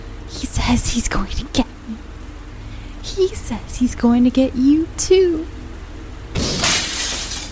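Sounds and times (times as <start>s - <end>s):
speech: 0.4s - 2.1s, 3.1s - 5.6s
gunshot: 6.4s - 7.0s
glass shattering and tinkling: 6.4s - 7.5s.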